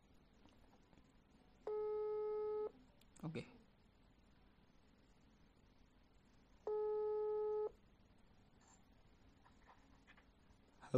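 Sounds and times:
telephone ringing tone while a call connects: 0:01.7 - 0:02.7, 0:06.7 - 0:07.7
speech: 0:03.2 - 0:03.6.

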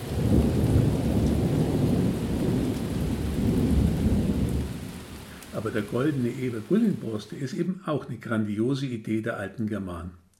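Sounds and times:
deep rolling thunder: 0:00.0 - 0:06.9
heavy rain: 0:00.0 - 0:08.1
speech: 0:05.6 - 0:10.2.

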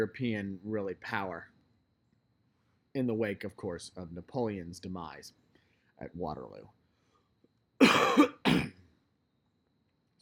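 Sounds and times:
speech: 0:00.0 - 0:01.6, 0:02.9 - 0:05.4, 0:06.0 - 0:06.8
harsh coughs: 0:07.8 - 0:08.8.

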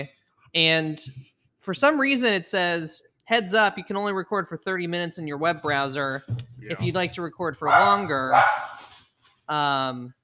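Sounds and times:
speech: 0:00.0 - 0:08.8, 0:09.5 - 0:10.2
dog barking: 0:07.6 - 0:08.9.

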